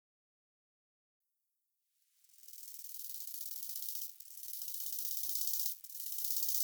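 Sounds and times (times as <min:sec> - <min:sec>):
bow-winged grasshopper rasping: 0:02.4 - 0:06.6.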